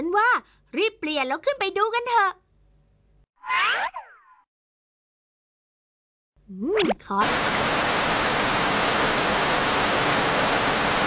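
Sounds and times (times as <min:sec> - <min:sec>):
speech: 0:00.2 - 0:02.4, 0:03.4 - 0:04.0, 0:06.5 - 0:07.7
rain pouring: 0:07.2 - 0:11.0.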